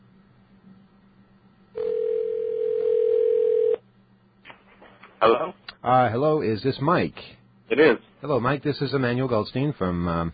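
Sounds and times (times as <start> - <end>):
telephone call connecting tone: 1.8 - 3.8
speech: 5.2 - 10.3.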